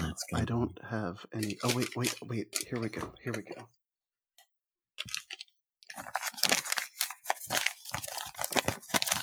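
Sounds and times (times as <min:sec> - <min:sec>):
speech: 0:00.3 - 0:03.8
paper rustling and crinkling: 0:01.4 - 0:03.1, 0:05.0 - 0:09.2.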